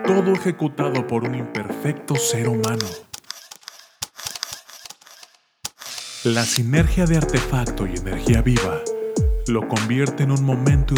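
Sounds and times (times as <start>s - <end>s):
speech: 0.1s - 3.1s, 6.2s - 8.9s, 9.5s - 10.9s
camera shutter clicks: 2.6s - 6.3s.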